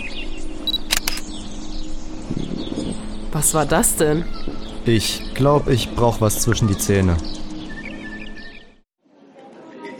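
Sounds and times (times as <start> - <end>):
bird chirps: 0.0 - 8.8
faint outdoor background: 0.0 - 9.9
camera shutter clicking: 0.7 - 1.3
speech: 3.4 - 7.4.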